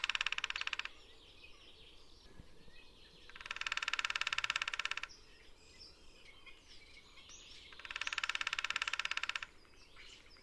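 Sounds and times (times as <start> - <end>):
lesser spotted woodpecker calling: 0.0 - 1.0, 3.3 - 5.2, 7.7 - 10.4.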